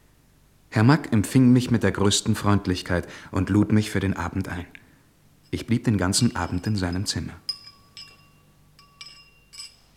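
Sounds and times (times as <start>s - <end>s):
speech: 0.7s - 4.8s, 5.5s - 7.5s
glasses clinking in a toast: 5.4s - 9.9s.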